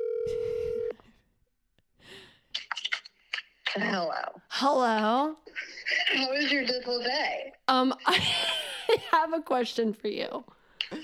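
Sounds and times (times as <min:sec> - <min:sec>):
phone call ringing out on speakerphone: 0:00.0 - 0:00.9
speech: 0:03.8 - 0:08.6, 0:09.2 - 0:11.0.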